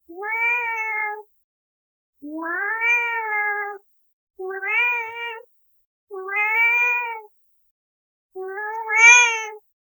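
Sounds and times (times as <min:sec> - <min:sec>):
cat meowing: 0:00.2 - 0:01.2, 0:02.3 - 0:03.8, 0:04.4 - 0:05.4, 0:06.1 - 0:07.3, 0:08.4 - 0:09.6.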